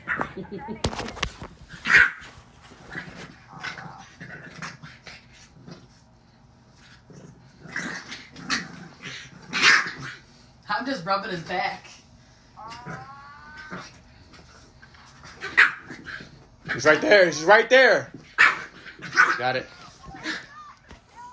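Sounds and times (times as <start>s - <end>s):
speech: 0.4s - 2.0s, 11.0s - 11.9s, 16.8s - 18.2s, 19.4s - 19.7s
dog barking and growling playfully while being played with: 1.7s - 5.8s, 6.8s - 10.2s, 12.6s - 20.8s.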